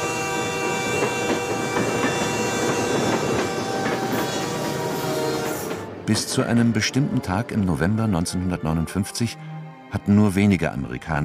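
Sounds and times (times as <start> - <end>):
train on the Santa Fe railway main line through a small rural town: 0.0 - 7.2
speech: 6.1 - 11.2.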